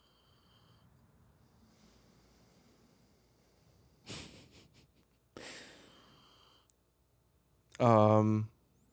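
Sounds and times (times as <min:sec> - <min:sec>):
person sniffing a beer: 0:04.0 - 0:04.8, 0:05.4 - 0:06.3.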